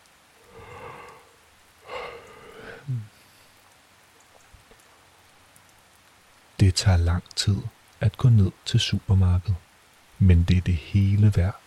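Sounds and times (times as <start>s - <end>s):
steady rain: 0.0s - 11.6s
breathy bursts: 0.4s - 3.6s
speech: 6.6s - 9.6s, 10.2s - 11.6s.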